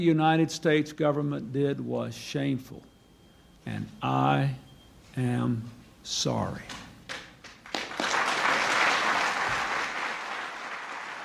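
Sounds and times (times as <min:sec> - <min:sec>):
speech: 0:00.0 - 0:02.9, 0:03.6 - 0:04.6, 0:05.2 - 0:06.8
large crowd applauding: 0:07.1 - 0:11.2.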